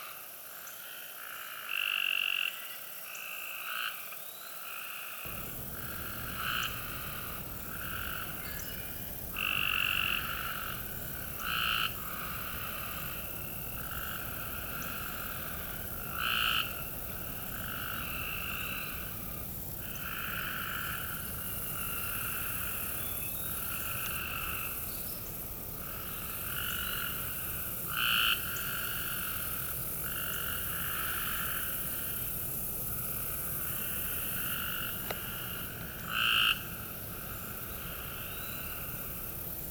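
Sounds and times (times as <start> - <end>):
Cope's gray treefrogs calling in MD: 0.6 - 39.7.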